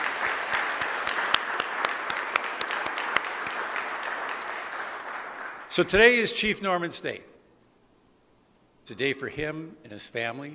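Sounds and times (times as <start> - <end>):
crowd applauding in a large room: 0.0 - 6.0
speech: 5.8 - 7.3, 8.9 - 10.5.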